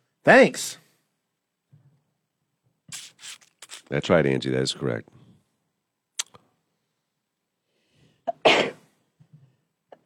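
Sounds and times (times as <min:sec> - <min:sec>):
speech: 0:00.2 - 0:00.8, 0:03.9 - 0:05.1
person sneezing: 0:08.3 - 0:08.9.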